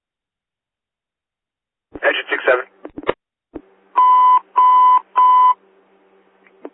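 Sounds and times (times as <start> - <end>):
fire station alert tones: 4.0 - 5.6.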